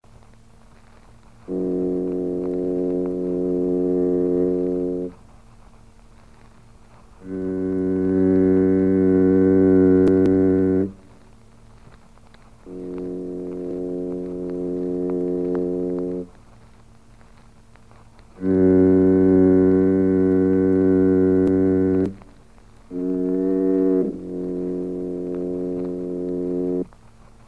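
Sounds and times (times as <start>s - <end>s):
fog horn: 1.4s - 5.2s, 7.2s - 11.2s, 12.6s - 16.4s, 18.2s - 22.3s, 22.9s - 26.9s.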